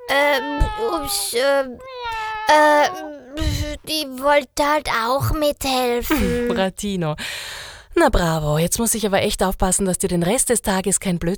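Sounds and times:
cat meowing: 0.0 - 3.9
speech: 0.1 - 11.3.

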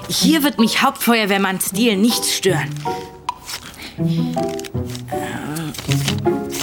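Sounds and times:
speech: 0.1 - 3.1, 4.0 - 4.8
sheet of paper being folded: 2.1 - 6.6
person vocalizing: 5.0 - 6.0.

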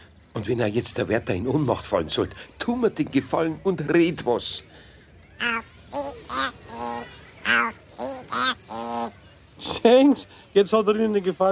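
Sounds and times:
speech: 0.4 - 4.8, 5.4 - 6.6, 9.8 - 11.5
parrot squawking: 5.4 - 9.2.

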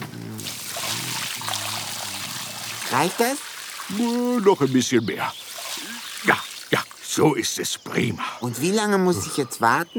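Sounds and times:
water pouring from a watering can onto garden soil: 0.4 - 7.2
speech: 2.9 - 5.4, 6.2 - 9.9.

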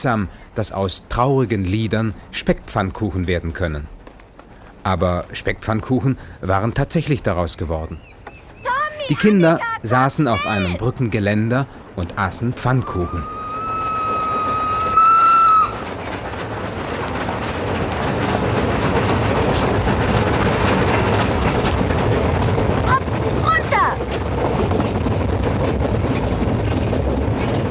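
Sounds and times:
speech: 0.0 - 4.0, 4.8 - 8.1, 9.1 - 13.4
heavy steady rumble of a passing train: 0.0 - 27.6
voice calling out: 8.6 - 10.9, 12.8 - 13.6.

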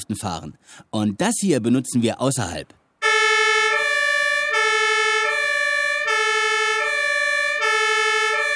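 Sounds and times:
speech: 0.0 - 2.8
fire engine two-tone siren: 3.0 - 8.5.

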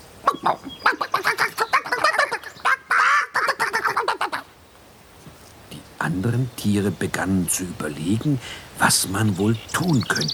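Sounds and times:
chickens squabbling in a farmyard: 0.2 - 4.6
speech: 0.4 - 1.1, 6.1 - 10.3.

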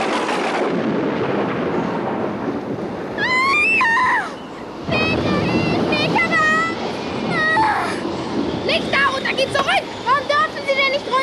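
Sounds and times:
strong stormy wind roaring with a low rumbling: 0.0 - 11.2
wavering howl: 3.1 - 11.2.

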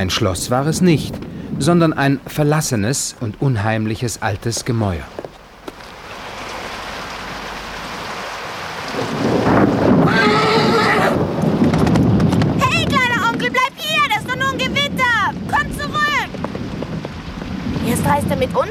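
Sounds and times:
low rumble of thunder: 0.0 - 3.4, 6.5 - 18.6
speech: 0.0 - 5.2
clip-clopping hooves of a horse galloping away: 0.0 - 7.8, 9.8 - 18.6
steady rain: 0.0 - 18.6
horse whinnying: 10.0 - 11.2.

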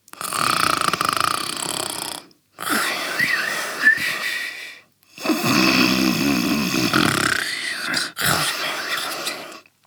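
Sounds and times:
father snoring loudly asleep on the floor: 0.2 - 3.5, 5.2 - 9.3.

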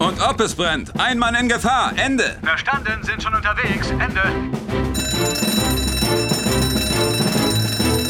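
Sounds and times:
speech: 0.2 - 5.8
fire station electric alarm bell ringing: 5.0 - 8.0.

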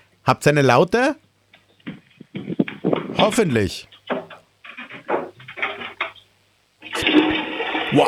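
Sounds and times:
speech: 0.2 - 1.2, 3.2 - 4.0
rushing, gurgling toilet water: 5.0 - 8.0
loud toilet flushing: 6.8 - 8.0.

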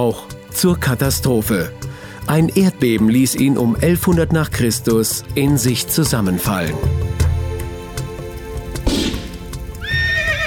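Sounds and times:
speech: 0.0 - 7.2
horse hooves clopping: 8.0 - 10.4
heavy thud: 8.9 - 9.6
startled horses neighing and whinnying: 9.2 - 10.4.

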